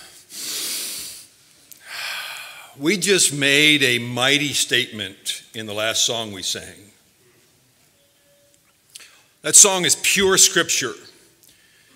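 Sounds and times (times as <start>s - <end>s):
standing congregation members breathing in together: 0.0s - 2.8s, 11.5s - 11.9s
speech: 2.8s - 7.0s, 9.4s - 11.2s.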